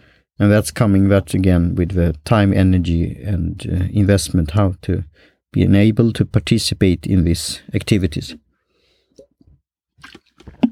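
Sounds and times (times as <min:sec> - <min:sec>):
speech: 0:00.4 - 0:08.4
soft wet mouth clicks and slurps sipping matcha tea: 0:09.2 - 0:10.6.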